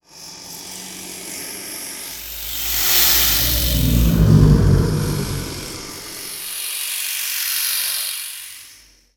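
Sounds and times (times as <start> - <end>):
serpent hiss loop: 2.2 - 6.2.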